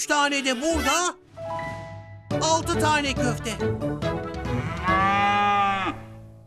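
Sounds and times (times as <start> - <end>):
speech: 0.0 - 1.6, 2.4 - 4.2
cow mooing: 4.4 - 6.2.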